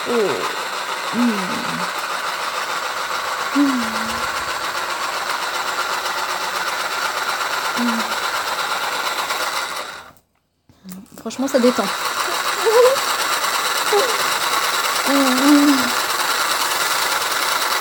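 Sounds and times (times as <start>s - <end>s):
brief low vocal sounds: 0.0s - 0.6s, 1.2s - 1.9s, 15.1s - 16.0s
small electric motor whirring: 0.0s - 10.2s, 11.3s - 17.7s
speech: 0.1s - 2.0s, 3.6s - 4.2s, 11.3s - 13.1s.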